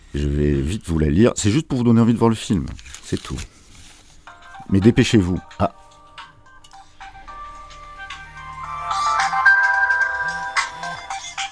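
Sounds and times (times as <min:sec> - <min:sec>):
speech: 0:00.1 - 0:03.5, 0:04.7 - 0:05.8
mobile phone electronic ringtone melody: 0:04.3 - 0:11.5.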